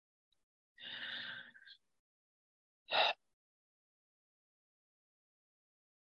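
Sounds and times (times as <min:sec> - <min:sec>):
deep breathing during a guided relaxation: 0:00.8 - 0:01.8.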